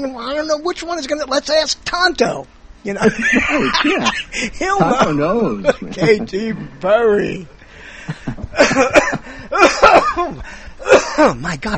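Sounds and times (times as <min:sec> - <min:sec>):
speech: 0:00.0 - 0:07.6, 0:08.6 - 0:11.7
laughter: 0:03.0 - 0:11.3
harsh phlegmy smoker's cough: 0:08.6 - 0:11.3.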